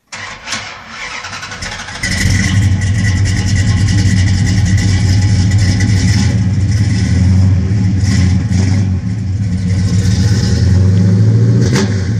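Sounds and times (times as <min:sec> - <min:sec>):
Dodge Charger 440 with Flowmaster exhaust: 0:01.5 - 0:12.1.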